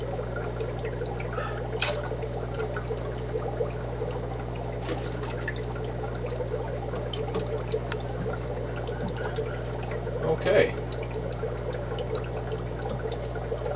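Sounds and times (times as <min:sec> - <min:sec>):
aquarium tank water pouring into a container: 0:00.0 - 0:13.7
low hum: 0:00.0 - 0:13.7.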